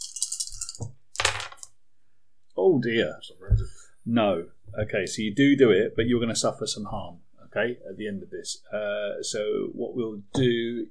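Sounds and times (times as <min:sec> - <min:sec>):
three dice rattling and clattering onto a hard surface: 0:00.0 - 0:01.7
speech: 0:02.7 - 0:10.9.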